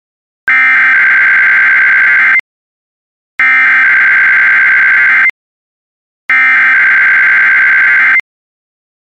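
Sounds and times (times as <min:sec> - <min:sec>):
National Weather Service radio warning alarm tone: 0:00.5 - 0:02.4, 0:03.4 - 0:05.4, 0:06.3 - 0:08.2.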